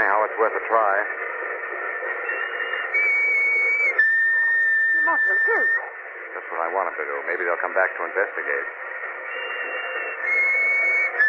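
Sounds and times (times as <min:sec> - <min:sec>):
speech: 0:00.4 - 0:01.5, 0:05.1 - 0:08.8
shrill whistle blown in a long steady blast: 0:02.2 - 0:05.9, 0:09.3 - 0:11.2.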